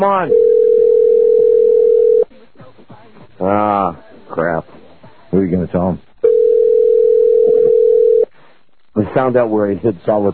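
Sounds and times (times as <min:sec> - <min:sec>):
speech: 0:00.0 - 0:00.5, 0:03.4 - 0:04.7, 0:05.3 - 0:06.1, 0:09.0 - 0:10.3
unanswered telephone call ringing with long electronic tone: 0:00.3 - 0:02.3, 0:06.2 - 0:08.3.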